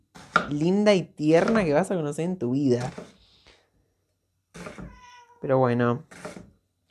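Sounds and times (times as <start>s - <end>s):
speech: 0.4s - 3.2s, 5.4s - 6.5s
cat meowing: 4.7s - 5.6s.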